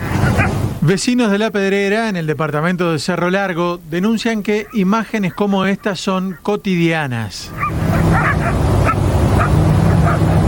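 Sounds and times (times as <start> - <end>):
several dogs around a garbage dump barking and yipping: 0.0 - 0.8, 4.1 - 6.6, 7.4 - 10.4
steady outdoor noise at a garbage dump: 0.0 - 10.4
speech: 0.3 - 8.2.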